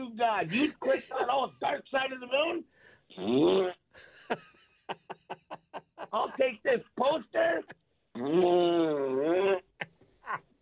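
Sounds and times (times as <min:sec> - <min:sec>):
speech: 0:00.2 - 0:05.5, 0:06.1 - 0:09.6
laughter: 0:00.5 - 0:01.8, 0:04.0 - 0:06.6
buzzy fart noise played on a website when clicking a buy link: 0:03.1 - 0:03.8, 0:08.1 - 0:09.5.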